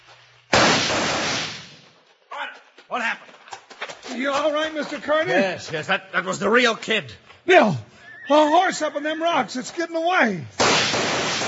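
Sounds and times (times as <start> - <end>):
gunshot in a Western shootout: 0.5 - 1.8, 10.6 - 11.4
speech: 2.9 - 3.3, 4.1 - 11.4.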